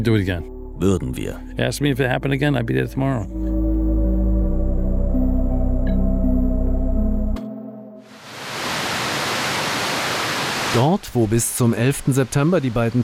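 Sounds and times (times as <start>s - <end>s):
speech: 0.0s - 3.6s, 10.8s - 13.0s
low musical drone: 0.0s - 8.0s
water cascading into memorial fountain pools: 8.1s - 13.0s.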